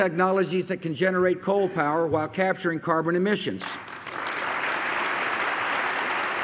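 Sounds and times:
speech: 0.0s - 4.0s
large crowd applauding at the State of the Union: 3.8s - 6.4s.

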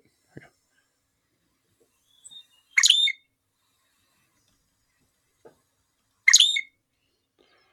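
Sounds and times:
loggerhead shrike harsh buzzy song: 1.3s - 6.8s.

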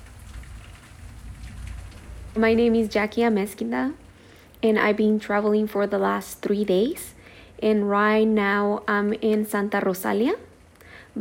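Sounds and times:
low rumbling undertone: 0.0s - 4.5s
steady rain pattering on a surface in Santa Rosalia Baja California Mexico: 0.0s - 7.0s
speech: 2.4s - 4.0s, 4.6s - 10.5s.

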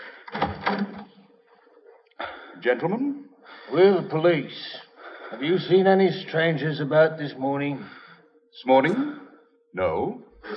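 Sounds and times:
door opening with rattling mechanical clatter: 0.3s - 1.1s
speech: 2.6s - 8.0s, 8.6s - 9.2s, 9.8s - 10.5s.

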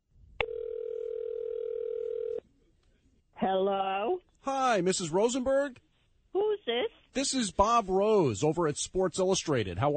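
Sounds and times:
telephone dial tone before a call: 0.4s - 2.4s
speech: 3.4s - 5.9s, 6.7s - 9.9s.

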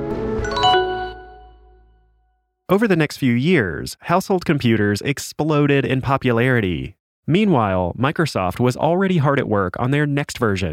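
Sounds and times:
quick descending xylophone shutdown sound: 0.4s - 1.9s
speech: 2.7s - 10.7s.

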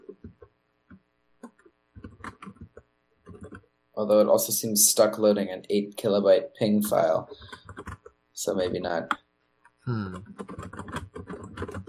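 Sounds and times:
typing on a mechanical computer keyboard: 1.4s - 3.6s, 6.9s - 9.2s, 10.0s - 11.8s
speech: 4.0s - 7.6s, 8.4s - 9.2s, 9.9s - 10.7s
voice murmuring: 9.9s - 10.4s.

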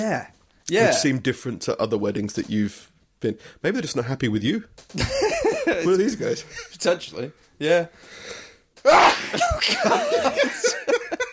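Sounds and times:
speech: 0.0s - 11.2s
people laughing and reacting: 5.0s - 6.8s, 8.9s - 11.3s
person sneezing: 8.9s - 9.7s.

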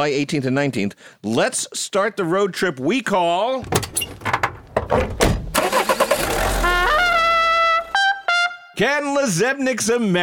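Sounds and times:
speech: 0.0s - 5.4s, 8.8s - 10.2s
sharp clunks: 3.6s - 5.6s
car engine starting and revving: 5.4s - 7.9s.

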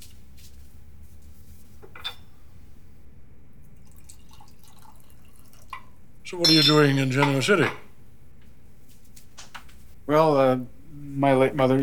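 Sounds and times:
low steady room hum: 0.0s - 11.8s
sharp little clink of a glass: 1.9s - 2.4s, 5.8s - 7.9s
drink being poured into a glass: 3.8s - 6.0s
speech: 6.3s - 7.8s, 10.1s - 11.8s.

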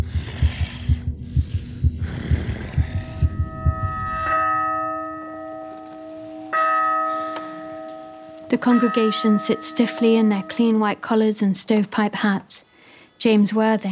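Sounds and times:
pounding heartbeat: 0.0s - 5.6s
deep bell ringing: 2.6s - 11.4s
speech: 8.5s - 13.8s.

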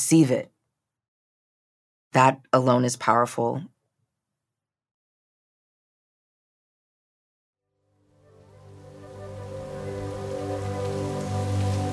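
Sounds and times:
speech: 0.0s - 0.6s, 2.1s - 3.7s
heavy rain: 8.4s - 11.9s.

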